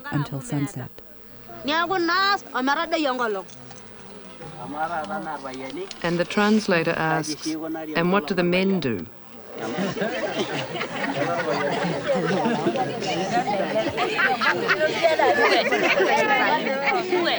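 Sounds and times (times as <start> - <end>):
dense murmur of many voices: 0.0 - 17.3
speech: 0.1 - 1.0, 1.6 - 3.6, 4.4 - 17.3
scattered chuckles and laughter from crowd: 9.3 - 17.3.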